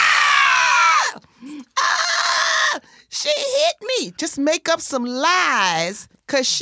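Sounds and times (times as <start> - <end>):
person mock screaming: 0.0 - 2.8
speech: 4.0 - 6.5.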